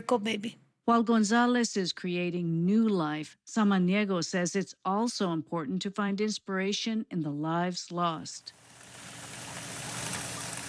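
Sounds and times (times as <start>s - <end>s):
speech: 0.0s - 8.7s
water splashing and trickling from small fountains in front of a memorial wall: 8.5s - 10.6s.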